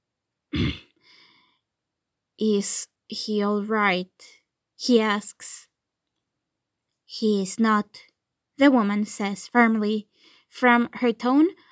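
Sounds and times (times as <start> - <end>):
man clearing his throat: 0.5 - 0.9
speech: 2.4 - 5.7, 7.1 - 11.7.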